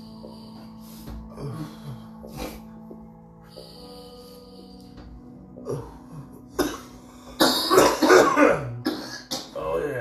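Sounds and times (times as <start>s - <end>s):
person coughing after dabbing: 6.5s - 9.7s
throat clearing: 6.6s - 9.6s.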